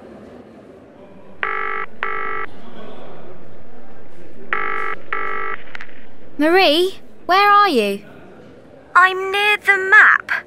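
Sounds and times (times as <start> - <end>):
telephone ringing: 1.2 - 7.8
speech: 6.4 - 8.1, 9.0 - 10.2.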